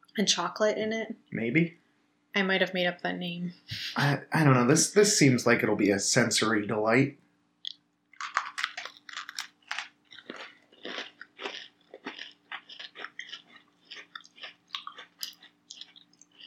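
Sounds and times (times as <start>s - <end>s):
speech: 0.2s - 1.8s, 2.4s - 7.2s
hard overbaked crunchy cookie being chewed: 7.7s - 16.4s.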